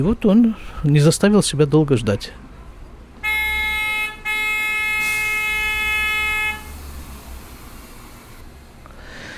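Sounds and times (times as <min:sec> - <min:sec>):
speech: 0:00.0 - 0:02.4
wet street hiss of rain and passing traffic: 0:02.4 - 0:09.3
car horn honking on a rainy street: 0:03.2 - 0:07.2.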